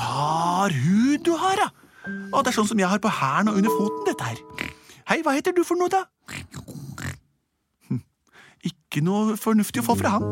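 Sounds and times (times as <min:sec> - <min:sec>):
speech: 0:00.7 - 0:06.2, 0:07.9 - 0:10.3
pig grunting and snorting: 0:04.5 - 0:05.0, 0:06.2 - 0:07.3.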